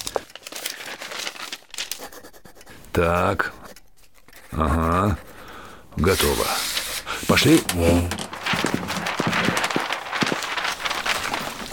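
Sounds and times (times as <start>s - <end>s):
paper rustling and crinkling while writing a letter: 0.0s - 3.4s, 6.0s - 11.7s
sharper paper handling sounds: 0.0s - 5.1s, 6.0s - 11.7s
speech: 3.0s - 3.6s, 4.6s - 5.3s, 6.0s - 6.7s, 7.3s - 8.2s.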